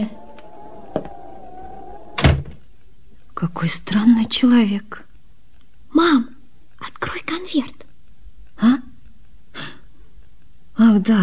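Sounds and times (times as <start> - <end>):
faint hum: 0.0 - 2.6
heavy door thump: 2.0 - 2.6
speech: 3.4 - 5.0, 5.9 - 6.3, 7.0 - 7.8, 11.0 - 11.2.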